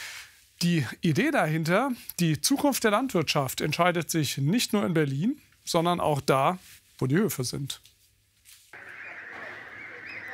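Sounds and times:
speech: 0:00.6 - 0:07.9
many geese honking and cackling in a goose barn on a farm: 0:08.8 - 0:10.3.

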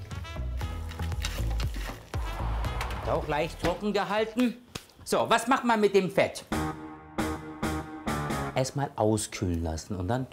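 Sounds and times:
diced bacon frying until crisp: 0:00.6 - 0:03.0
speech: 0:03.1 - 0:06.6, 0:08.6 - 0:10.3.

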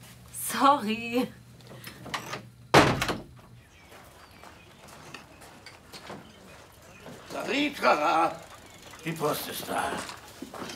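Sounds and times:
speech: 0:00.6 - 0:01.4, 0:07.6 - 0:08.4, 0:09.0 - 0:10.7
door being shut: 0:02.7 - 0:03.4.

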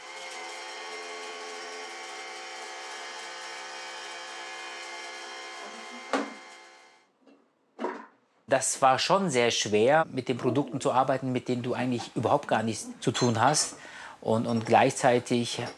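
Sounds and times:
kitchen blender whirring: 0:00.0 - 0:06.9
blender clunk: 0:06.1 - 0:06.5
speech: 0:08.5 - 0:15.7.

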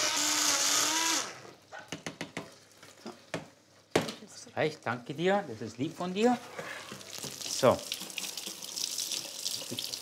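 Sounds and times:
electric mixer blending butter and white wine with beetroot: 0:00.0 - 0:01.5
speech: 0:04.6 - 0:06.7, 0:07.6 - 0:08.0.

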